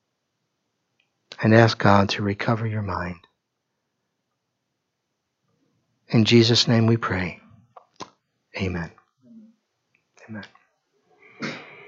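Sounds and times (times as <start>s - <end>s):
speech: 1.4s - 3.3s, 6.1s - 7.4s, 8.6s - 9.0s, 10.3s - 10.6s
short sharp sneeze: 11.2s - 11.8s.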